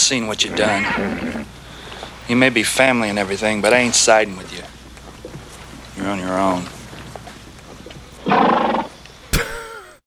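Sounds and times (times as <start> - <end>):
speech: 0.1 - 1.6, 2.3 - 4.8, 6.1 - 6.8
horse vocalizing with a breathy call and whinny: 0.5 - 1.6, 8.2 - 9.0.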